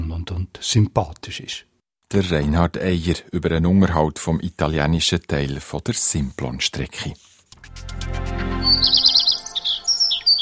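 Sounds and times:
speech: 0.3 - 9.2
several birds singing outdoors: 8.6 - 10.4.

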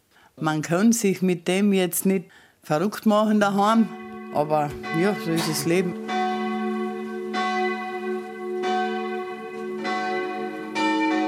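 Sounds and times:
speech: 0.4 - 6.1
church bells ringing a peal for evening mass: 3.2 - 11.2.

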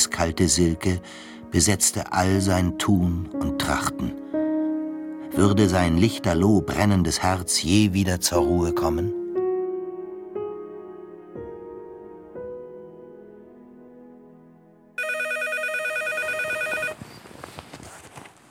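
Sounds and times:
speech: 0.0 - 4.3, 5.4 - 9.2
telephone ringing with a repeating melodic tone: 15.0 - 17.0.

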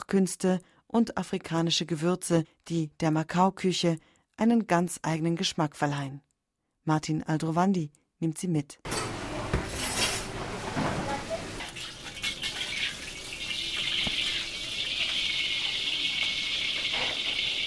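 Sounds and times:
speech: 0.1 - 9.9
kitchen utensils clinking and clattering: 8.9 - 17.6
minced pork sizzling in a kitchen pan: 11.2 - 17.6.

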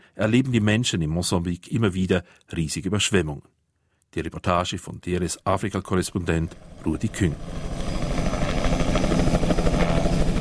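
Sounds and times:
speech: 0.2 - 7.9
helicopters flying over a flooded area along the Zambezi in Mozambique carrying relief supplies: 6.1 - 10.3
helicopter low engine drone: 6.2 - 10.3.

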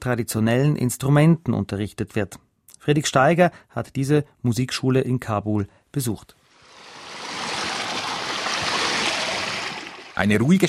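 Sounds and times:
speech: 0.0 - 6.4, 10.2 - 10.6
water pouring from a pipe on a street in southern Kabul: 6.5 - 10.6.

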